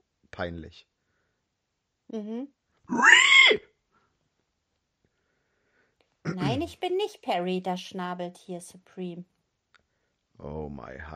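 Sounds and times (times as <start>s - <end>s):
speech: 0.4s - 0.9s, 2.1s - 3.7s, 6.4s - 9.3s, 10.4s - 11.1s
person imitating pig grunting noises: 6.3s - 6.7s.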